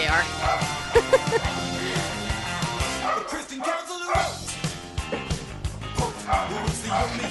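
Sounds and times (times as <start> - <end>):
dogs barking with sharp yips: 0.3 - 1.4, 2.8 - 7.2
laughter: 0.8 - 2.3, 5.0 - 7.2.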